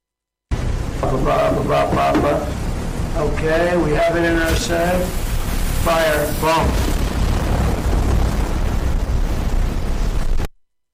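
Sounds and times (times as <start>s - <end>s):
explosion of drone hit by gunfire from a ship: 0.5s - 10.5s.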